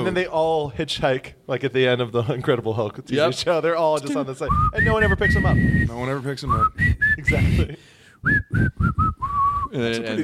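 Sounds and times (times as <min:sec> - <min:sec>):
speech: 0:00.0 - 0:10.2
person whistling a short breathy descending tune: 0:04.5 - 0:07.6, 0:08.2 - 0:09.8.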